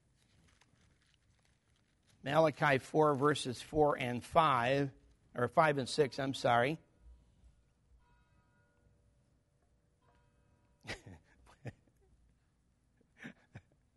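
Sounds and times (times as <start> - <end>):
speech: 2.2 - 6.8
faint church bell ringing: 7.9 - 10.8.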